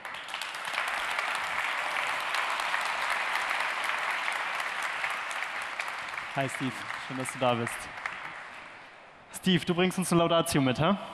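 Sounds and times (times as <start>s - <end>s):
audience applause: 0.0s - 8.9s
speech: 6.4s - 8.0s, 9.4s - 11.1s.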